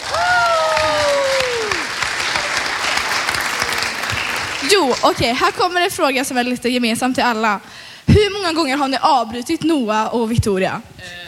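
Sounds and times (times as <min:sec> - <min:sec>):
person whooping: 0:00.0 - 0:01.9
small group clapping: 0:00.0 - 0:06.0
speech: 0:04.7 - 0:11.2.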